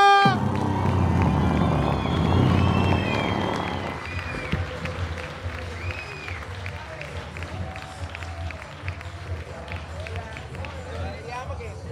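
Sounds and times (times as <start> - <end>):
scattered whoops and whistle-like cheers: 0.2 - 8.7
crowd applause and cheering: 0.2 - 11.6.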